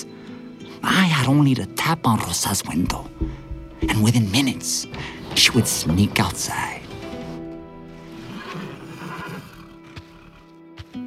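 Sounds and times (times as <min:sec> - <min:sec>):
speech: 0:00.8 - 0:06.8
hooves shifting on the stable floor: 0:02.8 - 0:11.0
horse whinnying loudly in a stable: 0:06.9 - 0:10.5.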